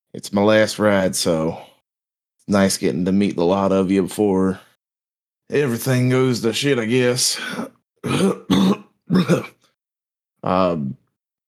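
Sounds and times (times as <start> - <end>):
speech: 0.1 - 1.7, 2.5 - 4.7, 5.5 - 9.6, 10.4 - 11.0
man coughing harshly: 7.4 - 9.6.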